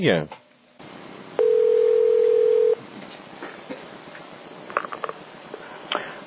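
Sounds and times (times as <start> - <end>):
loud steady telephone tone as a call is placed: 1.4 - 2.8.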